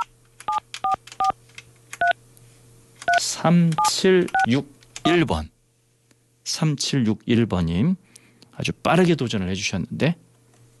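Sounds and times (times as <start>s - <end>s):
steady low hum: 0.0s - 10.7s
speech: 3.4s - 5.5s, 6.5s - 10.3s
phone keypad touch-tone beeps: 3.8s - 4.5s.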